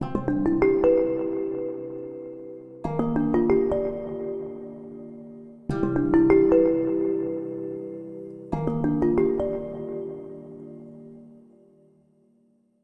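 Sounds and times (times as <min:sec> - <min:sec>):
glass marimba ringtone: 0:00.0 - 0:11.5.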